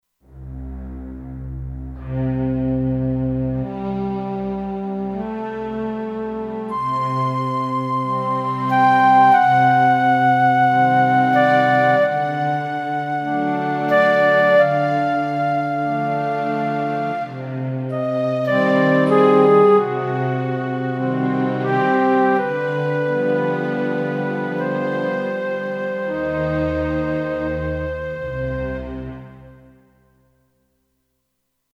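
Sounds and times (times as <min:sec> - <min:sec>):
synthesizer slow strings: 0:00.2 - 0:29.9
synthesizer flute: 0:02.0 - 0:29.9.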